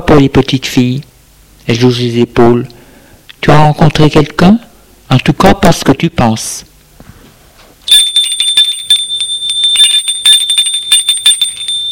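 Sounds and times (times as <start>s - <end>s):
speech: 0.0s - 2.8s, 3.4s - 6.7s
bell ringing for dinner: 7.9s - 11.9s.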